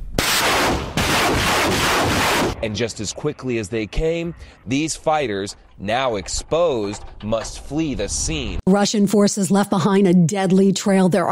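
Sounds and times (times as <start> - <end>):
artillery firing on the front line in the war in Ukraine: 0.0 - 2.7
speech: 2.6 - 11.2.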